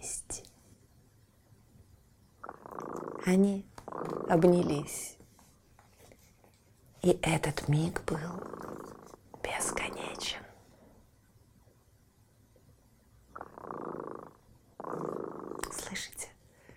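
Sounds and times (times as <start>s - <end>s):
cat purring: 2.4s - 5.2s, 7.1s - 10.6s, 13.3s - 16.3s
speech: 3.2s - 3.7s, 4.3s - 5.1s, 7.0s - 8.6s.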